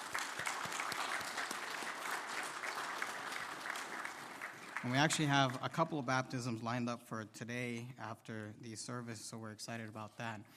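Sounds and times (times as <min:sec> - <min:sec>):
room full of people clapping: 0:00.0 - 0:05.9
speech: 0:04.8 - 0:10.5.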